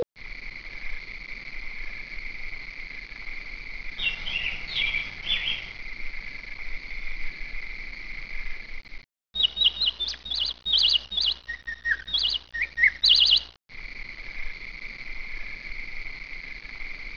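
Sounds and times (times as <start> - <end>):
bird chirping: 4.0 - 5.7, 9.3 - 13.6.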